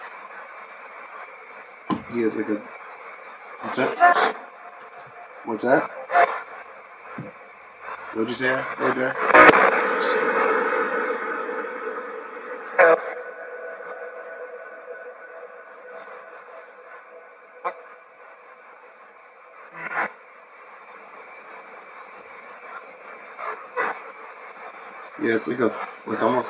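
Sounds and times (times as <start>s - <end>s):
spirit box radio sweep in a library: 0.0s - 26.4s.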